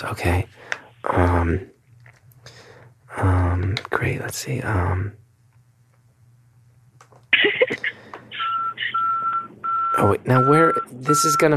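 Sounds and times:
speech: 0:00.0 - 0:01.7, 0:03.2 - 0:05.2, 0:10.0 - 0:11.5
truck reversing alarm beeping: 0:08.4 - 0:11.5.

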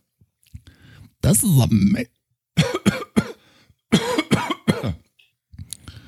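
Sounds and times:
speech: 0:01.3 - 0:02.2
harsh coughing: 0:02.6 - 0:05.1.

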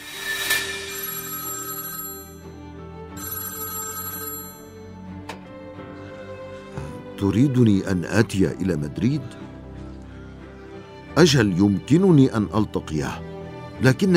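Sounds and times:
telephone bell ringing for an incoming call: 0:00.5 - 0:05.3
speech: 0:07.2 - 0:09.4, 0:11.2 - 0:14.1.

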